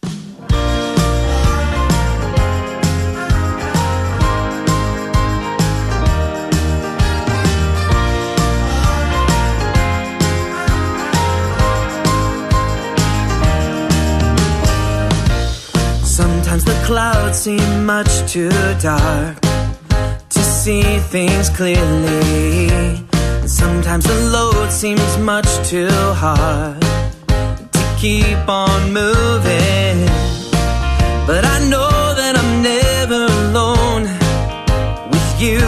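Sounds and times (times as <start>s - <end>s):
instrumental song intro with chords over a rhythmic beat: 0.0s - 35.6s
speech: 16.9s - 19.4s, 20.7s - 27.0s, 28.0s - 30.2s, 31.3s - 32.0s.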